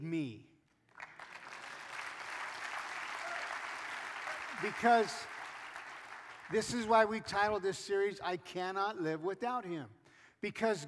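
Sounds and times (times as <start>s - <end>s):
speech: 0.0s - 0.5s, 4.6s - 5.3s, 6.5s - 10.8s
audience clapping during a sermon: 0.9s - 6.9s.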